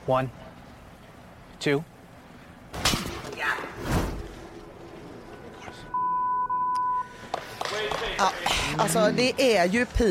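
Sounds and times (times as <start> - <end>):
speech: 0.0 - 0.4, 1.6 - 1.9, 7.8 - 10.0
low noise: 0.0 - 10.0
censor bleep over a swear word on TV: 5.9 - 7.2.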